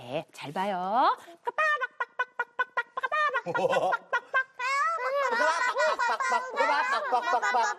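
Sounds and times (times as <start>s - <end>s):
speech: 0.1s - 1.8s, 3.4s - 4.2s, 5.3s - 7.7s
children giggling: 1.5s - 7.7s
group of children imitating chicken clucking: 4.4s - 7.7s.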